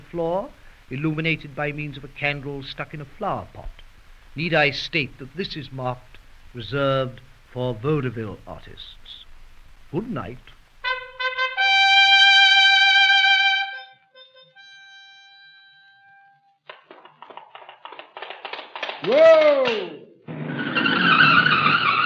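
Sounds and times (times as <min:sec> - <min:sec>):
harsh noisy hiss: 0:00.0 - 0:12.6
speech: 0:00.1 - 0:03.8, 0:04.4 - 0:09.2, 0:09.9 - 0:10.6, 0:19.0 - 0:20.0
car skidding under hard braking: 0:20.3 - 0:22.0.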